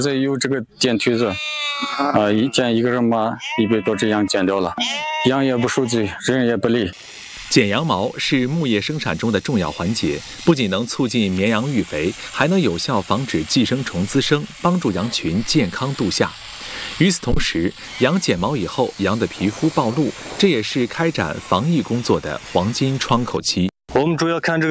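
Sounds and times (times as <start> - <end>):
person talking: 0.0 - 16.4, 17.0 - 24.6
sheep bleating in a pen: 1.0 - 6.5
electric sheep shears buzzing through wool: 6.9 - 23.0.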